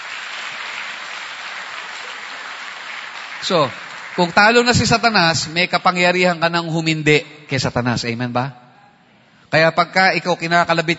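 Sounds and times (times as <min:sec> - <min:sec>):
congregation applauding during a church worship service: 0:00.0 - 0:05.6
speech: 0:03.4 - 0:08.6, 0:09.5 - 0:10.9.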